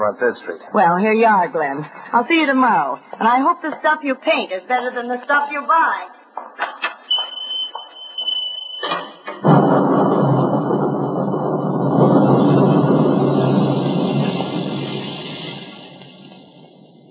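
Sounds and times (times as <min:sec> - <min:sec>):
speech: 0:00.0 - 0:06.7
sharp knocks: 0:08.8 - 0:15.0
heavy steady roaring of a thunderstorm: 0:09.4 - 0:16.4
deep rumbling thunder: 0:09.4 - 0:17.0.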